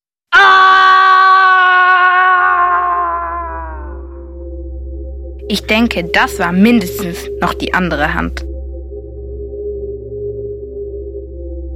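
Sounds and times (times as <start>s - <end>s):
man letting out a long sustained last scream: 0.3s - 4.2s
speech: 5.5s - 8.5s.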